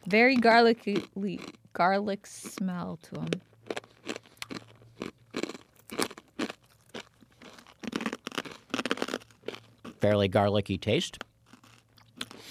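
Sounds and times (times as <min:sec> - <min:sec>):
speech: 0:00.1 - 0:03.8, 0:10.0 - 0:11.2
chewing broken garlic-flavored pretzel pieces: 0:00.3 - 0:01.6, 0:03.2 - 0:10.2, 0:10.9 - 0:12.5.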